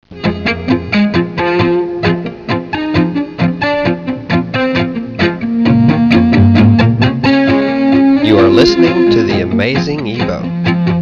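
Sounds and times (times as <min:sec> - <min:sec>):
ebow guitar tone: 0:00.2 - 0:11.0.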